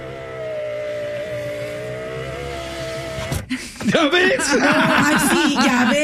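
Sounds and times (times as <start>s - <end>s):
juicer motor running with a buzzing whine: 0.0s - 3.5s
laughter: 3.5s - 6.0s
speech: 3.5s - 6.0s.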